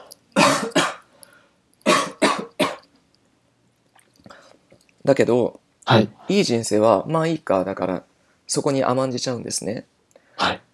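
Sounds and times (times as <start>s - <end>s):
person coughing: 0.4s - 1.1s, 1.8s - 2.8s
speech: 5.0s - 10.6s.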